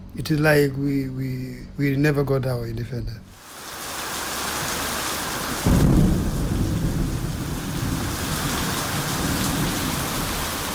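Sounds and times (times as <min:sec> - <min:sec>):
speech: 0:00.2 - 0:03.4
heavy rain pouring in a thunderstorm: 0:03.3 - 0:10.7
deep rumble of thunder: 0:04.6 - 0:10.7.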